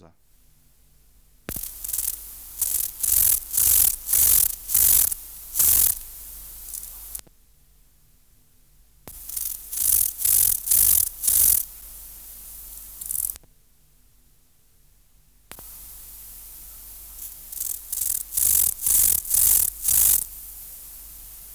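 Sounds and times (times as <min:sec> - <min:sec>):
Chorthippus pulloides grasshopper: 0:00.3 - 0:21.4.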